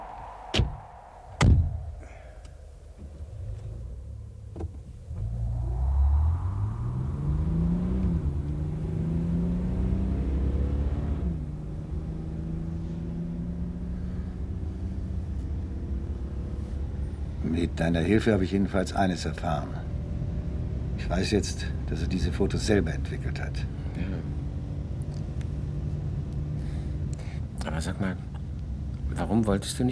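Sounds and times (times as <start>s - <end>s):
sharp thuds: 0.0s - 3.2s
car engine starting and running: 0.0s - 29.9s
speech: 17.6s - 19.9s, 21.1s - 24.4s, 27.8s - 28.2s, 29.2s - 29.9s.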